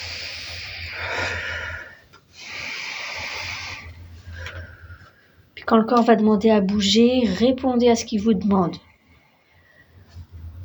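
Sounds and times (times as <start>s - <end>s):
person breathing in and blowing out vigorously: 0.0s - 5.5s
speech: 5.7s - 8.9s.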